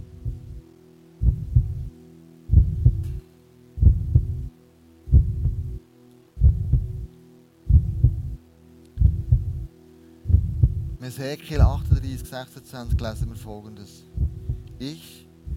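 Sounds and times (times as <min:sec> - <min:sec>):
human heartbeat heard through the chest: 0:00.0 - 0:00.6, 0:01.2 - 0:01.9, 0:02.5 - 0:03.2, 0:03.8 - 0:04.5, 0:05.1 - 0:05.8, 0:06.4 - 0:07.0, 0:07.7 - 0:08.4, 0:09.0 - 0:09.7, 0:10.3 - 0:11.0, 0:11.6 - 0:12.2, 0:12.9 - 0:13.4, 0:14.2 - 0:14.8
faint hum: 0:00.0 - 0:15.5
speech: 0:11.0 - 0:14.1, 0:14.8 - 0:15.2.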